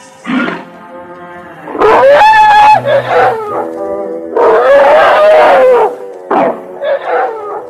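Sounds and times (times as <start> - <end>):
Indian elephants trumpeting while bathing: 1.5 - 7.6.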